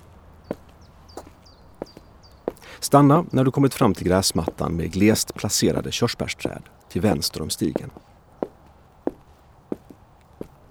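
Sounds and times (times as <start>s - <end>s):
footsteps walking along a path: 0.0s - 10.7s
low hiss: 0.0s - 10.7s
speech: 2.8s - 8.1s.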